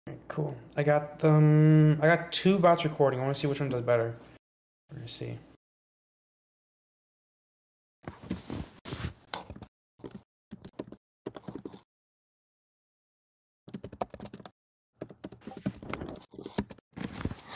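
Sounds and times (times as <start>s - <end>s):
speech: 0.1s - 4.3s, 4.9s - 5.5s
typing on a computer keyboard: 9.4s - 11.8s, 13.7s - 16.8s.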